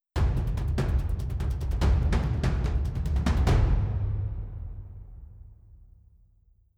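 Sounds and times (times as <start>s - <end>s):
drum rhythm: 0.2s - 5.3s.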